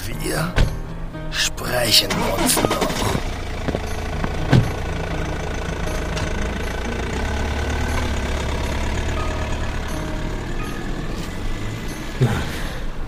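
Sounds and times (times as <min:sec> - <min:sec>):
speech: 0:00.2 - 0:00.7, 0:01.3 - 0:03.3
old car engine rumbling as it drives off: 0:01.3 - 0:13.0
brief sharp bumps: 0:02.7 - 0:13.0.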